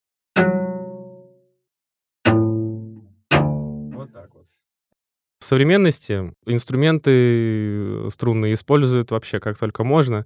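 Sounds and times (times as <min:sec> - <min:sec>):
snap pizzicato plucks on a string instrument: 0:00.4 - 0:01.3, 0:02.3 - 0:04.1
speech: 0:04.2 - 0:04.7, 0:05.4 - 0:10.2.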